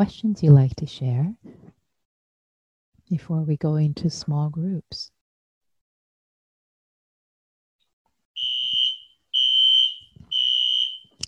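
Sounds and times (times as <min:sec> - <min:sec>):
speech: 0:00.0 - 0:01.4, 0:03.1 - 0:05.2
fire alarm beeping: 0:08.4 - 0:11.2.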